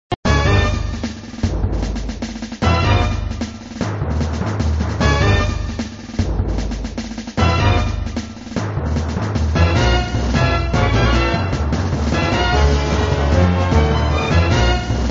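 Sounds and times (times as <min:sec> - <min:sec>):
music: 0:00.2 - 0:15.1.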